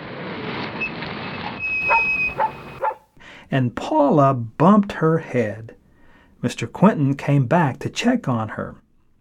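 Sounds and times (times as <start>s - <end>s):
thin high-pitched squeal: 1.8s - 3.0s
dog barking: 1.8s - 3.1s
speech: 3.5s - 5.8s, 6.4s - 8.8s.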